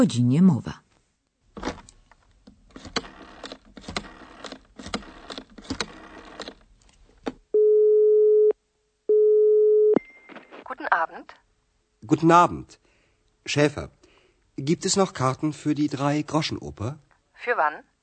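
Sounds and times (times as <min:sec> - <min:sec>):
speech: 0:00.0 - 0:00.8, 0:12.1 - 0:12.8, 0:13.5 - 0:14.0, 0:14.6 - 0:17.9
clicky uneven telephone dialing sounds: 0:02.7 - 0:06.6
electronic telephone ringing tone heard down the line: 0:07.5 - 0:10.0.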